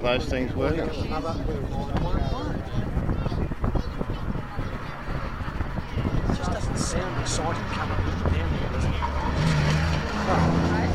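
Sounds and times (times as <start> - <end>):
speech: 0.0 - 2.8, 6.4 - 9.6, 10.3 - 10.9
race car engine with triple SU carburettors roaring: 3.5 - 10.9.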